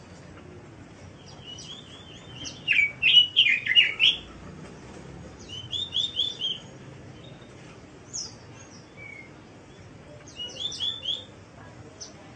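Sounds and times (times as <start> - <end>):
bird song of rapid chirps: 1.2 - 4.3, 5.4 - 7.5, 10.3 - 11.3.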